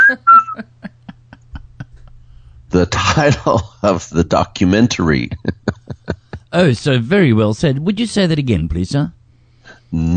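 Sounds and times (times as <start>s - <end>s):
person whistling a short high note: 0.0s - 0.6s
laughter: 0.0s - 2.2s, 2.8s - 4.0s, 5.0s - 6.6s
speech: 0.1s - 0.7s, 2.7s - 5.5s, 6.5s - 9.2s, 9.9s - 10.1s.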